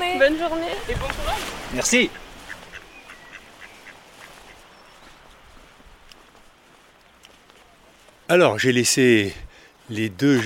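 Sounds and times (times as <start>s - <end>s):
speech: 0.0s - 2.2s, 8.3s - 10.4s
duck quacking: 2.1s - 4.6s.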